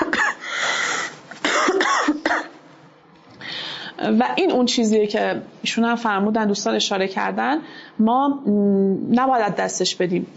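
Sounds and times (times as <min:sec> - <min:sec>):
harsh rough coughs from a person recovering from a severe cold: 0:00.0 - 0:00.6, 0:01.3 - 0:02.6
speech: 0:04.0 - 0:10.3.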